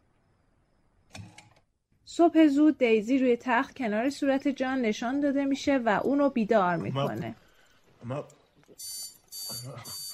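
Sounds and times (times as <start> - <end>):
speech: 2.1 - 7.4, 8.0 - 8.4, 9.6 - 10.0
alarm clock ringing in the morning with electronic beeping: 8.8 - 10.1.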